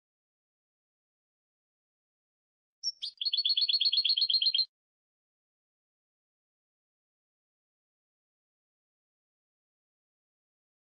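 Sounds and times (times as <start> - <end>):
European goldfinch song: 2.8 - 4.7.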